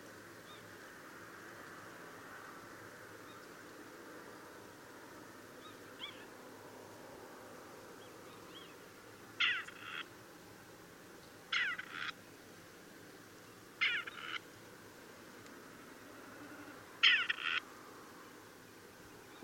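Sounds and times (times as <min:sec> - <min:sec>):
low constant hiss: 0:00.0 - 0:19.4
grey partridge grating creaky two-note call: 0:09.4 - 0:10.1, 0:11.5 - 0:12.2, 0:13.8 - 0:14.4, 0:16.5 - 0:17.6.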